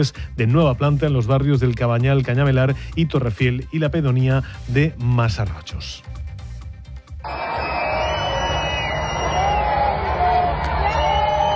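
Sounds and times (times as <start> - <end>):
speech: 0.0 - 6.3
large concert crowd shouting and cheering: 7.2 - 11.5
whoops from concert crowd: 7.2 - 11.5.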